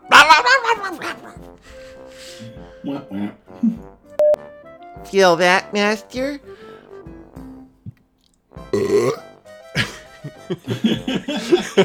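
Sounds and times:
laughter: 0.0 - 3.8, 9.8 - 11.8
speech: 2.8 - 3.9, 5.1 - 6.5, 10.5 - 11.8
loud belch with croaky gurgling burping: 8.7 - 9.3.

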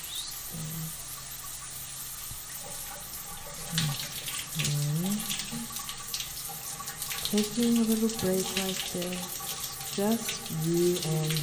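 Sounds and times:
shower water spattering droplets onto the floor: 0.0 - 11.4
speech: 7.3 - 9.4, 10.0 - 11.4.

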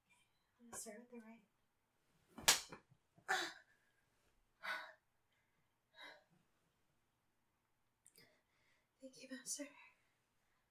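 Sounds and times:
speech: 0.7 - 1.6, 9.1 - 9.9
sharp whip strikes from a non-traditional whip: 2.4 - 2.8.

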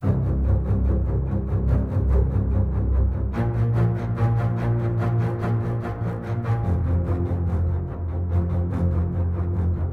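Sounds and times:
string instruments playing: 0.0 - 9.9.

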